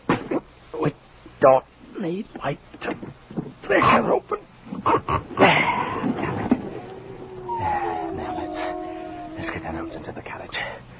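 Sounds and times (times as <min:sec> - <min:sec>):
steady hiss: 0:00.0 - 0:10.9
speech: 0:00.8 - 0:04.4, 0:09.9 - 0:10.8
several agitated dogs barking: 0:05.4 - 0:10.0.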